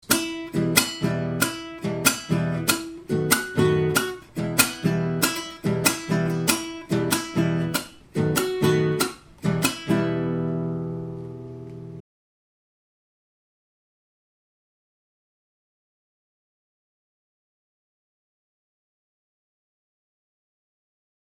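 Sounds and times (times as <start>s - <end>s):
chacarera guitar: 0.0s - 12.0s.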